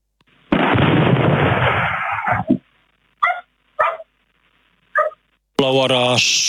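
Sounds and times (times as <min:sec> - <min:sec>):
explosion of an object striking the ground: 0:00.5 - 0:02.6
dog barking: 0:03.2 - 0:04.1, 0:05.0 - 0:05.2
speech: 0:05.6 - 0:06.4.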